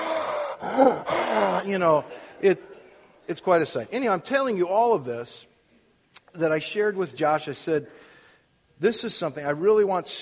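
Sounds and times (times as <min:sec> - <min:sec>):
voice imitating heavy breathing through a snorkel: 0:00.0 - 0:02.4
speech: 0:00.8 - 0:02.7, 0:03.3 - 0:05.5, 0:06.3 - 0:08.1, 0:08.8 - 0:10.2.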